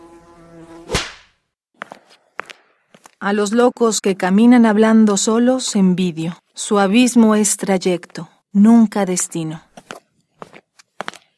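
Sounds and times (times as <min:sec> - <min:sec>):
fly buzzing: 0:00.0 - 0:01.4
sharp whip-like crack: 0:00.8 - 0:01.4
speech: 0:03.2 - 0:09.7.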